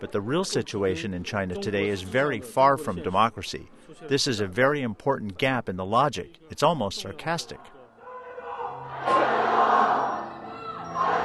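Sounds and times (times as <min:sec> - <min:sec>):
speech: 0:00.0 - 0:07.8
large crowd shouting political slogans in a film scene: 0:07.9 - 0:11.2.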